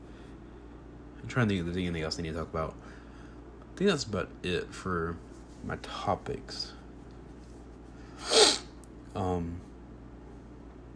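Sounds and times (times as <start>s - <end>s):
speech: 1.3s - 3.0s, 3.8s - 6.8s, 9.2s - 9.7s
loud sharp sniff: 8.1s - 8.7s.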